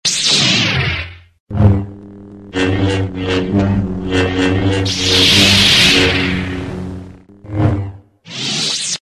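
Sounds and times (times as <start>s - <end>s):
lightsaber sound effect: 0.1s - 9.0s.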